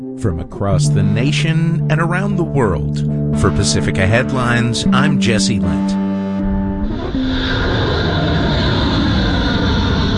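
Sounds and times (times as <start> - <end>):
speech: 0.2 - 6.0
steady whining tones: 6.0 - 10.1
US military aircraft engine roar launching for air strikes: 6.4 - 10.1.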